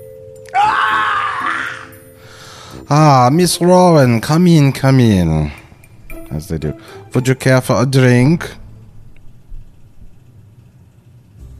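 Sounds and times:
single voice screaming in pain while running out: 0.5s - 2.0s
speech: 2.9s - 5.6s, 6.3s - 8.6s.

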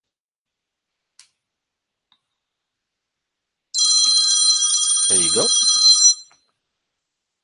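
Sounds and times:
telephone ringing with a bright electronic tone: 3.8s - 6.4s
speech: 5.1s - 5.8s.

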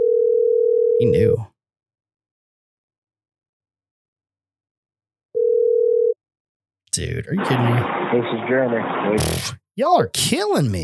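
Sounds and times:
electronic telephone ringing tone of an outgoing phone call: 0.0s - 1.3s, 5.4s - 6.2s
speech: 1.0s - 1.5s, 7.0s - 10.8s.

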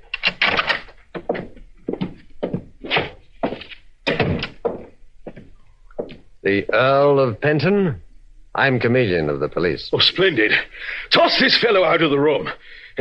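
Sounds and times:
thumps and knocks of a door being worked open: 0.4s - 6.2s
speech: 6.4s - 8.0s, 8.6s - 12.9s.

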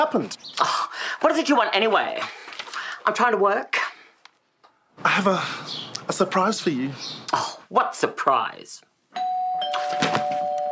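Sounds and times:
speech: 0.0s - 2.4s, 3.0s - 3.8s, 5.0s - 8.9s
electronic doorbell ringing: 9.2s - 10.6s.

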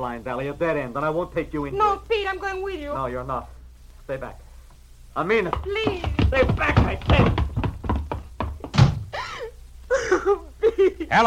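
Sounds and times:
speech: 0.0s - 4.4s, 5.2s - 7.4s, 11.1s - 11.2s
hollow thunks: 5.5s - 9.2s
laughter: 9.2s - 11.2s.

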